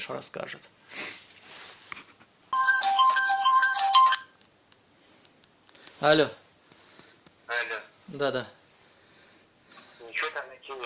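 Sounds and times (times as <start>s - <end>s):
speech: 0.0s - 1.2s, 6.0s - 6.4s, 8.1s - 8.6s
faint noise: 0.0s - 10.8s
phone electronic ringtone melody for an incoming call: 2.5s - 4.3s.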